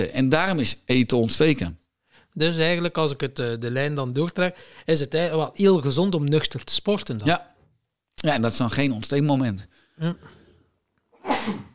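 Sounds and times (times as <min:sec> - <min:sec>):
speech: 0:00.0 - 0:01.8, 0:02.4 - 0:07.5, 0:08.2 - 0:10.4, 0:11.4 - 0:11.7
person sneezing: 0:11.2 - 0:11.7.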